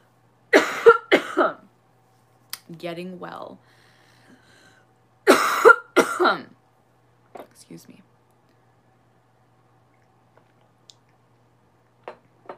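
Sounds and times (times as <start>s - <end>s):
person coughing: 0.5s - 1.6s, 5.3s - 6.5s
speech: 2.7s - 3.8s, 6.2s - 6.6s, 7.6s - 8.1s.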